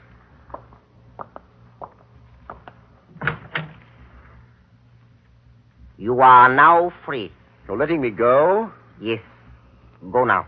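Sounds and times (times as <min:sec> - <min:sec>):
low hum: 0:00.0 - 0:10.4
back door handle clicks and knocks: 0:03.1 - 0:03.8
speech: 0:06.0 - 0:09.3, 0:10.0 - 0:10.4.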